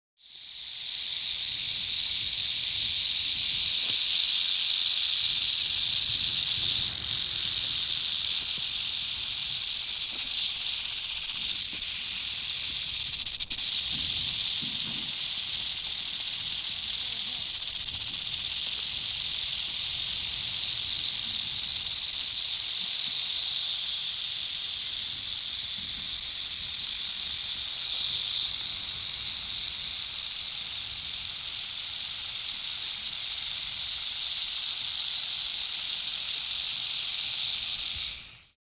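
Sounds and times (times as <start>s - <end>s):
rattlesnake tail rattling: 0.2s - 38.6s.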